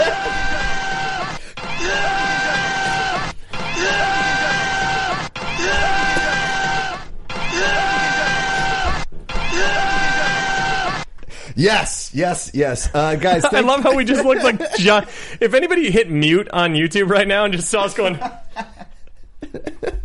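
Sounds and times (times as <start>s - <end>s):
laughter: 0.0s - 6.9s, 12.8s - 15.9s, 17.9s - 20.0s
several people yelling in action-hero imitation: 0.0s - 11.1s
speech: 11.6s - 18.7s.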